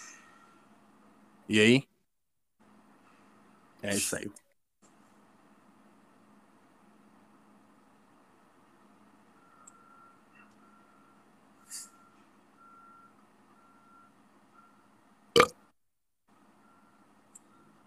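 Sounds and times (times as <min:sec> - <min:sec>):
speech: 0:01.5 - 0:01.9, 0:03.8 - 0:04.4
truck reversing beeps: 0:09.4 - 0:14.8, 0:16.6 - 0:17.8
burp: 0:15.4 - 0:15.6.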